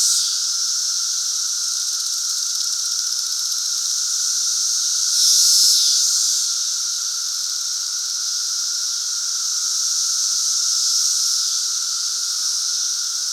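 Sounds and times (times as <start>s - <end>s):
periodical cicadas of the Great Southern Brood chorusing: 0.0s - 13.3s.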